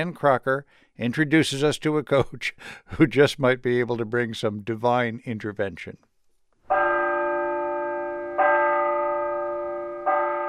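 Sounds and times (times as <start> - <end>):
speech: 0.0 - 6.1
church bell tower ringing: 6.7 - 10.4.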